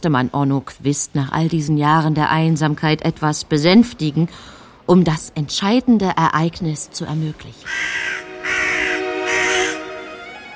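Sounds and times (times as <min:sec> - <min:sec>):
speech: 0:00.0 - 0:08.2
young raven cawing: 0:07.6 - 0:10.4.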